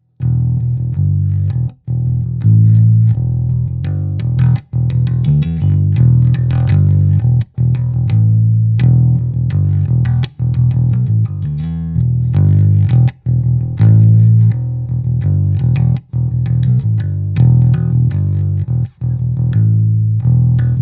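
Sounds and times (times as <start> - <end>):
low notes: 0.0 - 20.8.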